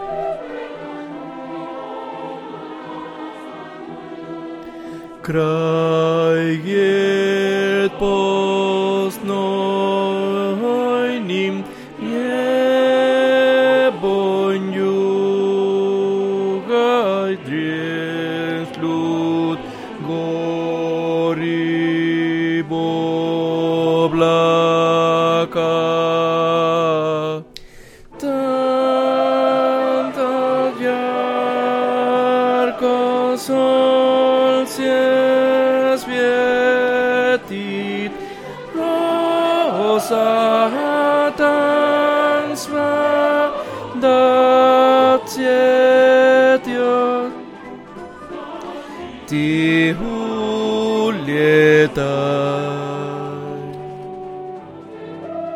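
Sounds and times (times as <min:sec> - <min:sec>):
tenors singing opera repertoire: 0:00.0 - 0:55.5.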